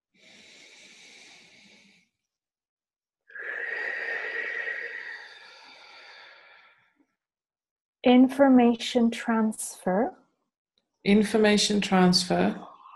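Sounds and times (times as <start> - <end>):
slow deep breath: 0.0 - 2.3, 3.3 - 7.2
speech: 8.0 - 10.2, 11.0 - 12.7.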